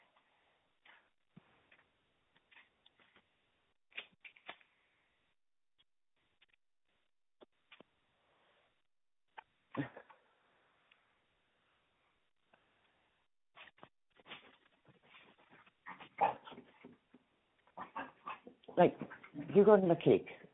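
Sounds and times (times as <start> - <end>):
dogs barking excitedly and whining: 15.5 - 17.0, 17.7 - 19.5
speech: 18.8 - 20.4.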